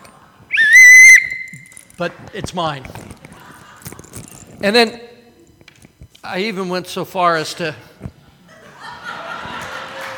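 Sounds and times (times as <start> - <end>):
shrill blast from a gold whistle: 0.5 - 1.7
speech: 2.0 - 3.1, 4.6 - 5.1, 6.3 - 7.9
laughter: 3.2 - 4.2, 8.4 - 10.1.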